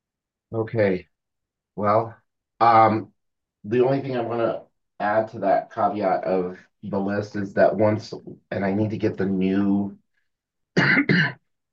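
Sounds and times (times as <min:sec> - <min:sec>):
speech: 0:00.5 - 0:01.1, 0:01.8 - 0:10.0, 0:10.8 - 0:11.4
person coughing: 0:10.8 - 0:11.4.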